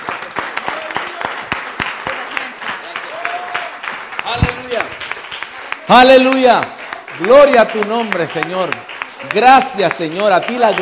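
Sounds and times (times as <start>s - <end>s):
congregation applauding during a church worship service: 0.0s - 10.8s
speech: 4.3s - 5.0s, 5.9s - 10.8s.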